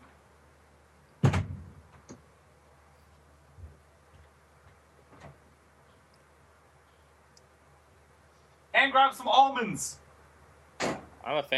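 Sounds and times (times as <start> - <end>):
front door shutting with a loud thud: 1.2 - 2.1, 10.8 - 11.2
faint clicks and soft knocks: 3.0 - 7.5
speech: 8.8 - 10.0, 11.3 - 11.5.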